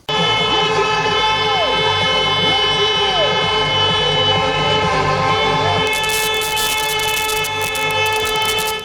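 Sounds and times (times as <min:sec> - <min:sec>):
fans' air horns blaring at a ski jumping event: 0:00.0 - 0:08.8
crowd roaring at a ski jumping event: 0:00.1 - 0:06.4.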